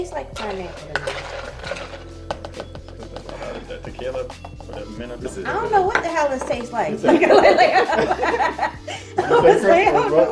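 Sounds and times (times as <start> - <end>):
speech: 0.0 - 1.8, 3.6 - 10.3
spoon scooping fruit into a mixed drink with lime: 0.3 - 6.9
laughter: 6.6 - 10.3.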